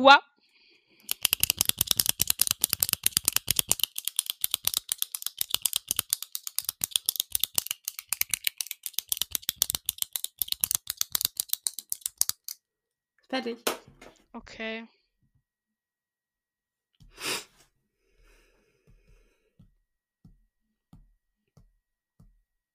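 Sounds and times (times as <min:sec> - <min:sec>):
speech: 0:00.0 - 0:00.3, 0:13.3 - 0:15.0
pen clicking from being fiddled with: 0:01.0 - 0:12.6.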